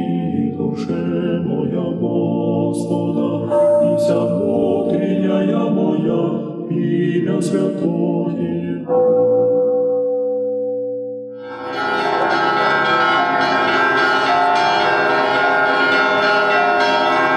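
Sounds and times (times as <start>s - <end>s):
peal of church bells ringing: 0.0s - 1.9s, 2.8s - 7.0s, 8.8s - 17.3s
lingering bell tone: 3.2s - 6.9s, 8.9s - 17.3s
speech: 5.4s - 9.7s.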